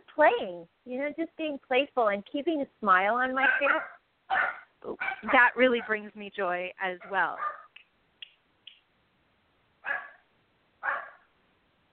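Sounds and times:
speech: 0:00.2 - 0:07.6
dogs barking: 0:03.4 - 0:06.0, 0:07.0 - 0:07.7, 0:09.8 - 0:11.3.

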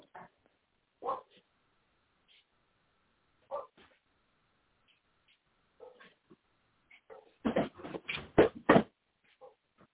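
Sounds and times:
dog barking: 0:01.0 - 0:01.4, 0:03.5 - 0:03.9, 0:05.8 - 0:06.2, 0:07.1 - 0:07.4, 0:09.4 - 0:09.6.

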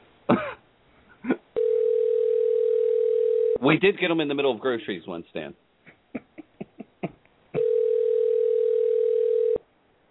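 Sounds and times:
telephone dial tone: 0:01.6 - 0:03.6, 0:07.6 - 0:09.6
speech: 0:03.6 - 0:05.6.

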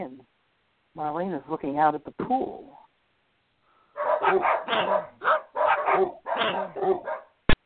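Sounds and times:
speech: 0:01.0 - 0:02.8, 0:04.2 - 0:05.3, 0:05.9 - 0:07.2
pack of dogs barking and yipping: 0:04.0 - 0:07.4.

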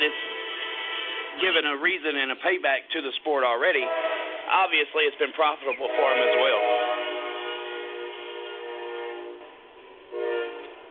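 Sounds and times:
passing train horn blaring a long steady chord: 0:00.0 - 0:01.9, 0:03.7 - 0:04.8, 0:05.4 - 0:10.8
speech: 0:01.4 - 0:06.8.

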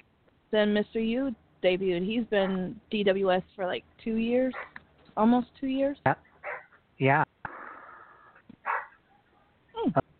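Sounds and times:
speech: 0:00.5 - 0:06.3, 0:07.0 - 0:07.3
dog barking: 0:04.5 - 0:04.8, 0:06.4 - 0:06.8, 0:08.6 - 0:09.6.

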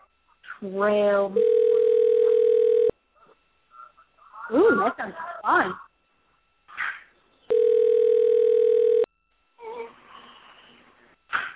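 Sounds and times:
speech: 0:00.6 - 0:01.6, 0:04.5 - 0:05.8
telephone dial tone: 0:01.4 - 0:02.9, 0:07.5 - 0:09.1.

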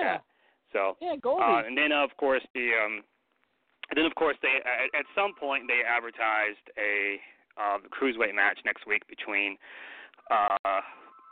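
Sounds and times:
faint room sound: 0:00.0 - 0:11.2
speech: 0:00.1 - 0:03.1, 0:03.9 - 0:11.0
phone ringing with a bright tonal ringtone: 0:04.6 - 0:05.8, 0:10.8 - 0:11.2.

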